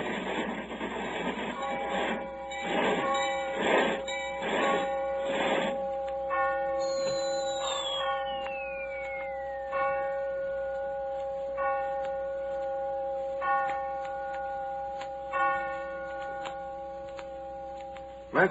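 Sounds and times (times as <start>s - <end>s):
clock bell striking the hour: 0.8s - 18.4s.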